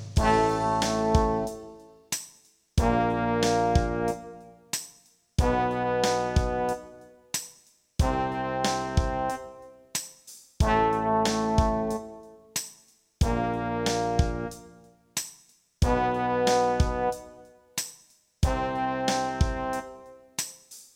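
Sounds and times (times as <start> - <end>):
brass in B flat: 0.2 - 2.0, 2.8 - 4.8, 5.4 - 7.4, 8.0 - 10.0, 10.6 - 12.6, 13.2 - 15.1, 15.8 - 17.8, 18.4 - 20.5.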